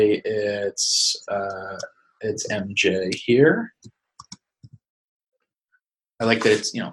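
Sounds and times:
speech: 0:00.0 - 0:03.8, 0:06.2 - 0:06.9
computer mouse double-clicking: 0:03.8 - 0:04.8.

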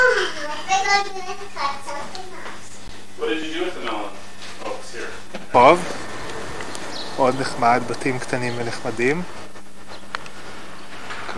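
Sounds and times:
children chattering and calling out outdoors in a park: 0:00.0 - 0:02.9, 0:06.0 - 0:09.1
steady open-air hum: 0:00.0 - 0:11.3
speech: 0:00.9 - 0:02.3, 0:05.5 - 0:06.0, 0:07.2 - 0:09.4.

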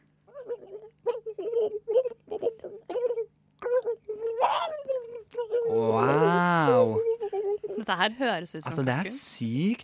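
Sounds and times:
person imitating a turkey gobble: 0:00.5 - 0:08.0
speech: 0:07.9 - 0:09.8.

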